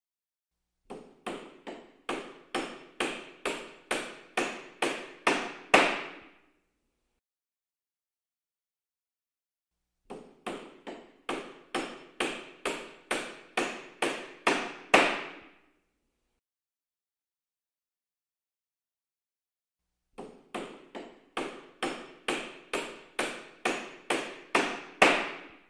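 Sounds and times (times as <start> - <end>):
carpentry work: 0.9 - 6.4, 10.1 - 15.6, 20.2 - 25.6.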